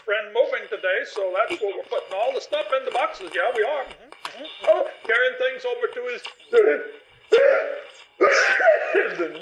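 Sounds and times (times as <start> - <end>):
speech: 0.1 - 9.3
person sneezing: 7.3 - 9.3.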